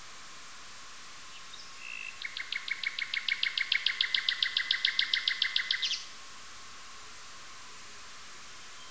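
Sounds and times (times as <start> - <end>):
nightingale song: 1.3 - 6.2, 8.4 - 8.8.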